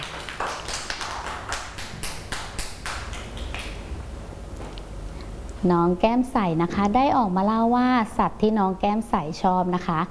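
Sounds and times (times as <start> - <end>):
small group of children clapping for a classmate: 0.0 - 3.8
speech: 5.6 - 10.0.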